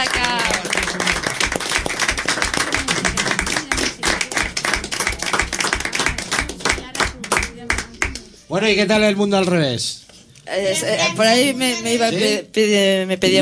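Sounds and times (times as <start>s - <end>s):
audience applause: 0.0s - 8.2s
speech: 8.5s - 13.4s.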